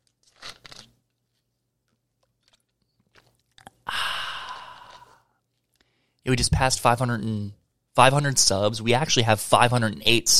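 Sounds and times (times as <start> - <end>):
person slurping gulps of Coke: 2.8 - 5.4
loud breathy satisfied exhale: 3.9 - 6.2
speech: 6.3 - 10.3.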